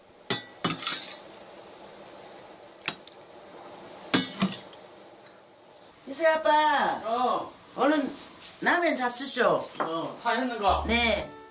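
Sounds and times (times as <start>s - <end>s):
metallic utensil scraping and clinking against a pot: 0.6s - 1.2s
soup sloshing as it is ladled out: 0.6s - 5.0s
speech: 6.1s - 11.3s.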